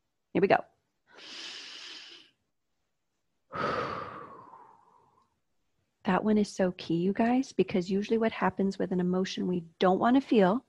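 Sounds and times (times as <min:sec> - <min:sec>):
speech: 0:00.4 - 0:01.4, 0:06.1 - 0:10.6
slow deep breath: 0:01.1 - 0:02.4, 0:03.5 - 0:05.4.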